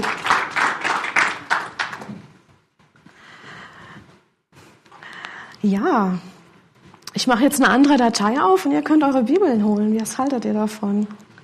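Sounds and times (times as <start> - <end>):
audience applause in a hall during a church service: 0.0 - 2.3
speech: 5.6 - 6.3, 7.2 - 11.2.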